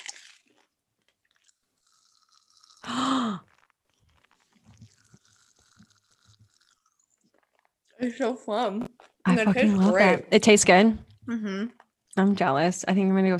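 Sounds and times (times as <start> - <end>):
person chewing a large mouthful of candy: 0.0 - 8.0, 8.8 - 9.2
speech: 8.0 - 13.3.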